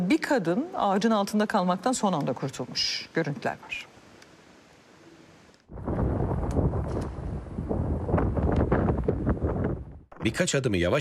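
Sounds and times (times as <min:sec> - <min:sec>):
speech: 0:00.2 - 0:03.9, 0:10.2 - 0:10.9
strong storm wind roaring: 0:05.7 - 0:10.2.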